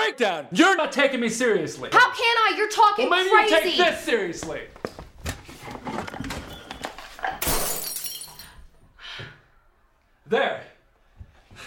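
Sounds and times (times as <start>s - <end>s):
speech: 0.2s - 5.0s, 10.3s - 10.7s
window glass shattering: 7.2s - 8.6s.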